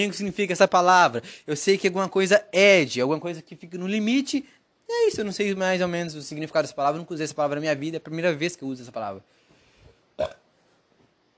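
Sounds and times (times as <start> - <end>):
speech: 0.0 - 9.4, 10.2 - 10.4
person on a sofa burping: 10.2 - 10.5.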